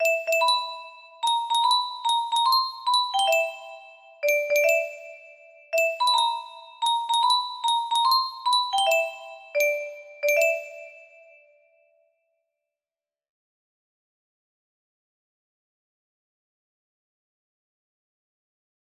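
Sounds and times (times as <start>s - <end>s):
suspenseful music box melody: 0.0s - 11.4s.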